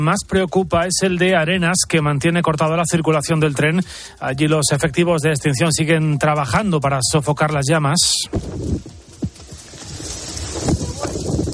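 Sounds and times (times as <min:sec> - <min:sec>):
speech: 0:00.0 - 0:09.0
strong gusts of wind during an outbreak of wildfires: 0:08.3 - 0:11.5.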